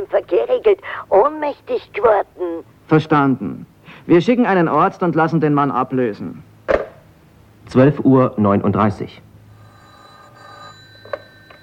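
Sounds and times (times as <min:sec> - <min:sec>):
speech: 0:00.0 - 0:06.5, 0:07.7 - 0:09.3
telephone ringing on a police line: 0:09.5 - 0:11.6.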